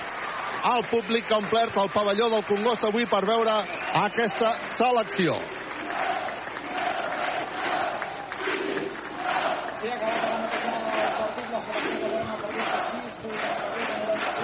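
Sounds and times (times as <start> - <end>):
speech: 0.6 - 5.6
large arena crowd chanting an independence slogan: 4.2 - 14.4.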